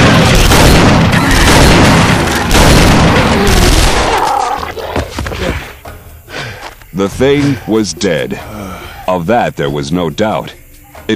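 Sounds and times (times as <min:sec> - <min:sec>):
12-gauge rapid-fire shotgun pistol firing: 0:00.0 - 0:04.2
speech: 0:07.0 - 0:11.1.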